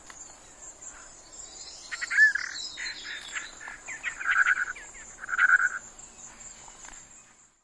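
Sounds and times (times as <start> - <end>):
steady high insect drone: 0.0 - 7.6
Short-tailed batis Batis mixta calling: 1.9 - 5.8.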